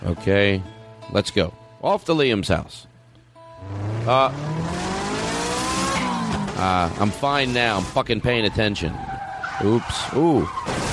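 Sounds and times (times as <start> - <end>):
speech: 0.0 - 2.9, 3.6 - 4.6, 6.6 - 9.0, 9.6 - 10.8
voice imitating car engine starting and revving: 3.6 - 8.0.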